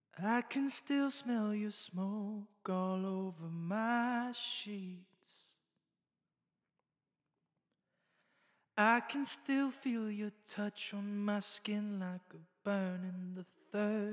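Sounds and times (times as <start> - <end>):
solo vocal with small plate reverb: 0.2 - 5.4, 8.8 - 14.1.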